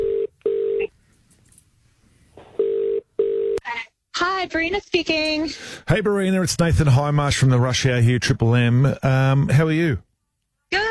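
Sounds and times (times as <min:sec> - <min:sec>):
outgoing phone call's ringback tone: 0:00.0 - 0:00.9, 0:02.6 - 0:03.6
speech: 0:04.2 - 0:10.0.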